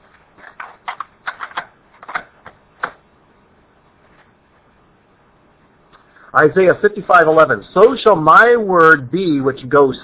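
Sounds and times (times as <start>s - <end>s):
cassette tape being flipped over in a tape recorder: 0.4s - 3.0s
speech: 6.4s - 10.0s.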